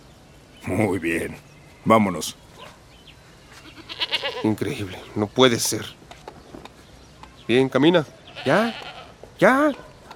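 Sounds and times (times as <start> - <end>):
speech: 0.6 - 2.4, 4.4 - 6.0, 7.5 - 9.9
goat in Senegal bleating: 3.6 - 4.8, 8.3 - 9.2.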